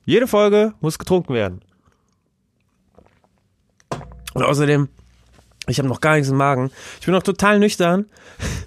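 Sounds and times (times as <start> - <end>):
speech: 0.0 - 1.7, 4.4 - 5.0, 5.7 - 8.6
person sipping and swallowing a drink: 1.8 - 3.5.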